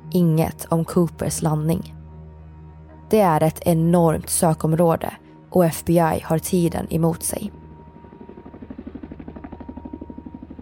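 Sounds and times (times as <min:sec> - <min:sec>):
speech: 0:00.1 - 0:02.0, 0:03.1 - 0:07.6
helicopter flying overhead: 0:05.7 - 0:10.6.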